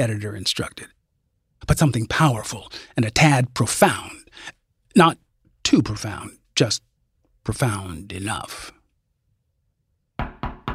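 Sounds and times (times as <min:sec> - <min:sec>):
speech: 0:00.0 - 0:01.0, 0:01.6 - 0:08.8
firm knocks on a door: 0:10.2 - 0:10.7.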